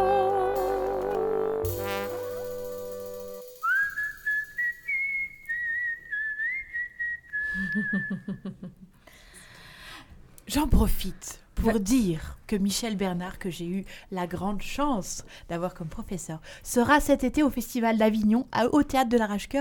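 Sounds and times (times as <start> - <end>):
sustained musical tones: 0.0 - 4.3
person whistling a folk tune: 0.0 - 8.4
speech: 7.9 - 9.4, 10.5 - 19.5.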